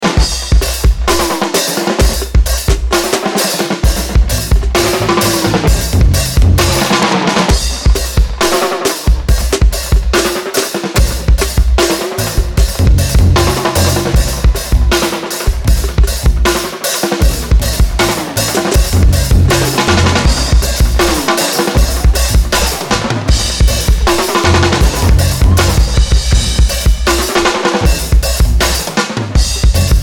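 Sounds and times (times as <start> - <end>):
dub drums: 0.0 - 30.0
laughter: 3.1 - 26.6.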